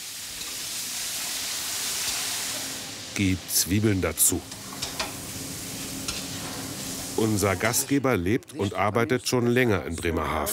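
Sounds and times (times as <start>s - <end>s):
meat searing in plenty of hot oil in a kazan cauldron: 0.0s - 7.9s
speech: 3.2s - 4.7s, 7.2s - 10.5s.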